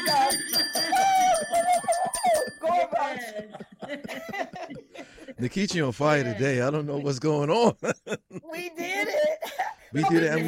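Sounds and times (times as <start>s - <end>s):
chimes ringing: 0.0s - 3.1s
laughter: 0.0s - 10.4s
speech: 5.4s - 10.4s.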